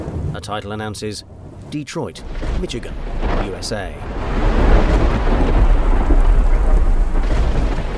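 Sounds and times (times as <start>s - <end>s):
speech: 0.4s - 6.2s
heavy downpour at night in Detroit Michigan USA: 2.1s - 7.9s
deep thunder rumble over Detroit Michigan USA at night: 2.2s - 7.9s.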